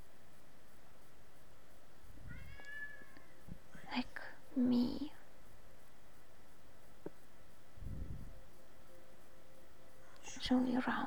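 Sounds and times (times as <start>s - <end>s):
hissy noise: 0.0s - 11.0s
cat meowing: 2.3s - 3.4s
speech: 4.6s - 5.2s, 10.5s - 11.0s.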